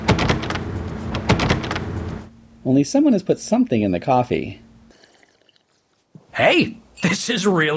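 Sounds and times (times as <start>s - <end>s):
door handle rattled on a locked door in a video game: 0.0s - 1.9s
speech: 2.6s - 4.6s, 6.4s - 7.7s.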